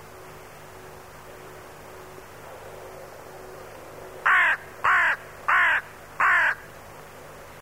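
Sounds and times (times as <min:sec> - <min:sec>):
crow cawing: 0:04.2 - 0:06.7.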